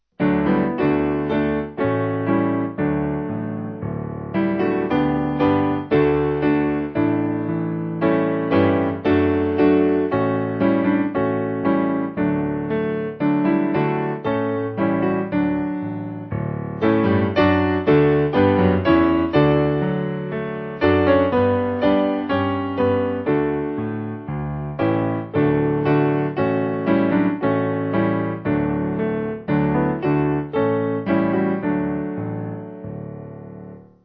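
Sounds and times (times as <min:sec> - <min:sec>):
piano piece: 0:00.0 - 0:34.0.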